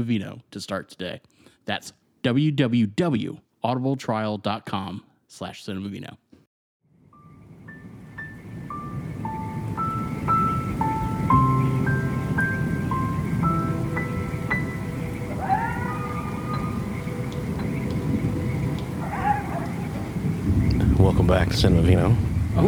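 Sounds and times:
speech: 0.0 - 6.2, 21.2 - 22.6
steady even rain hissing outdoors: 7.2 - 22.6
simple stepped melody of clear tones: 7.7 - 19.1.

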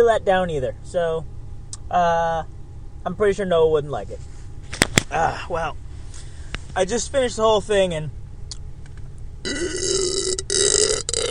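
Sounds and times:
speech: 0.0 - 1.3, 1.9 - 4.3, 5.1 - 5.8, 6.8 - 8.2
loud deep throaty burp: 9.4 - 11.3.

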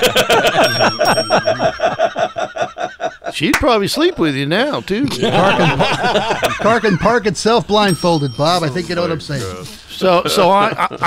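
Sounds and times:
speech: 0.0 - 0.5, 3.4 - 11.0
bell dinging rapidly: 0.0 - 2.8, 6.6 - 9.6
laughter: 0.0 - 7.7, 10.0 - 11.0.

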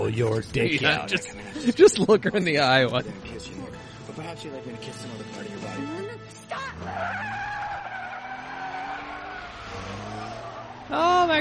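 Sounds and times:
speech: 0.1 - 7.6, 10.9 - 11.3
laughter: 0.8 - 3.2
car tires skidding during a spinning accident: 6.5 - 11.3.

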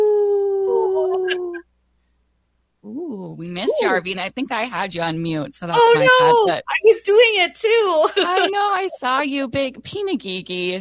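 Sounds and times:
person imitating a wolf howl: 0.0 - 1.6, 5.8 - 6.6
speech: 3.7 - 10.8
laughter: 5.8 - 6.6, 8.1 - 8.6.

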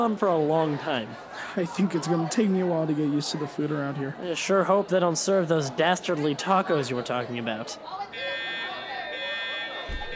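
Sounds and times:
speech: 0.0 - 8.4
steady high-pitched electronic alarm buzzing: 8.2 - 10.1.

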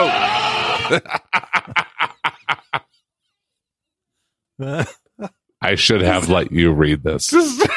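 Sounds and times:
goat wailing like a person: 0.0 - 1.1
laughter: 0.0 - 3.1
speech: 0.9 - 1.8, 4.6 - 7.7.

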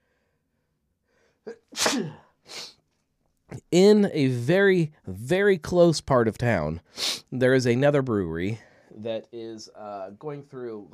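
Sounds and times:
person with a slight cold sneezing: 1.5 - 2.8
speech: 3.7 - 10.9.

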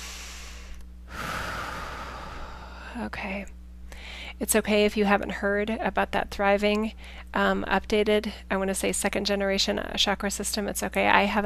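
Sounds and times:
deep breath: 0.0 - 3.0, 3.9 - 4.4
faint low hum: 0.0 - 11.4
speech: 3.0 - 11.4.

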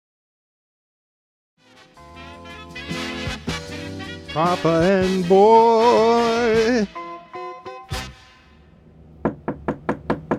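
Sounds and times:
speech: 4.4 - 7.0
knocking on a door: 9.2 - 10.3.

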